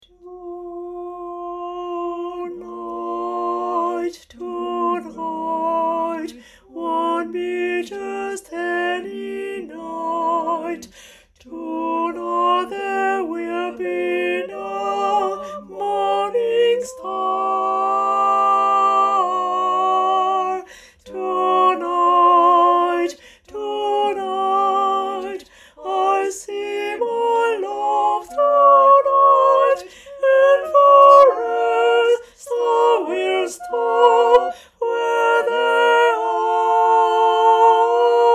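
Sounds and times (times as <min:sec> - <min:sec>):
tenor singing: 0:00.0 - 0:38.3.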